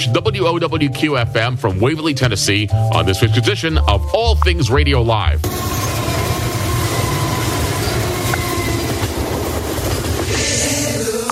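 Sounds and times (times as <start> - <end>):
speech: 0.0 - 6.2
metal squealing and clanking: 5.4 - 11.0
passing railroad train rumbling with rolling clatter: 5.4 - 11.2.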